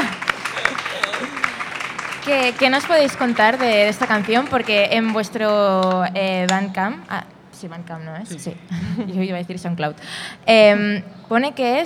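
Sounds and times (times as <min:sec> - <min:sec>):
laughter: 0:00.0 - 0:06.0, 0:08.4 - 0:09.3
light scattered applause: 0:00.0 - 0:06.1
faint murmur of voices: 0:00.0 - 0:10.0
speech: 0:02.3 - 0:11.8.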